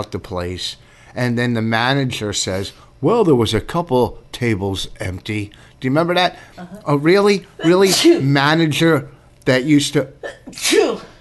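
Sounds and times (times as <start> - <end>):
speech: 0.0 - 11.1
sneeze: 10.3 - 11.1.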